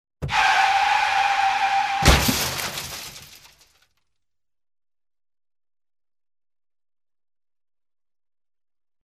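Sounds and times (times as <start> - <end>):
car crash: 0.2 - 4.0.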